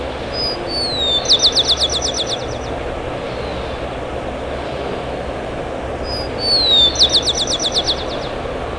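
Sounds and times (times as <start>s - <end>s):
steady low rumble: 0.0s - 8.7s
bird song with thin whistled sweeps and a fast high buzzy trill: 0.3s - 3.8s, 6.0s - 8.5s.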